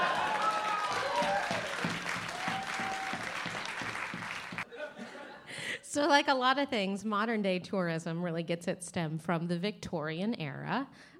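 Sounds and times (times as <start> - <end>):
crowd applauding: 0.0 - 4.7
laughter: 4.6 - 5.8
speech: 6.0 - 11.1.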